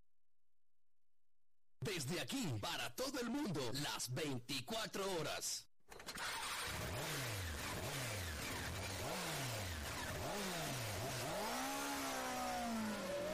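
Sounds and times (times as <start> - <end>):
speech: 1.9 - 5.7
motorcycle engine revving: 6.1 - 13.3.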